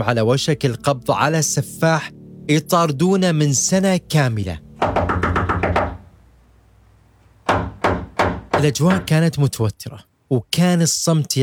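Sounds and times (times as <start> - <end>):
speech: 0.0 - 5.1, 8.6 - 11.4
knocking on a door: 4.8 - 6.0, 7.4 - 9.1.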